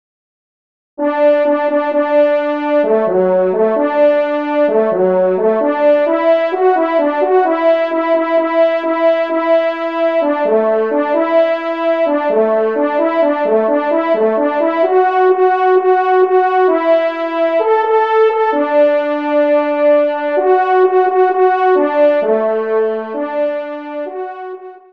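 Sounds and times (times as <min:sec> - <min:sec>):
horn playing: 0:01.0 - 0:24.9
march music: 0:01.0 - 0:24.9.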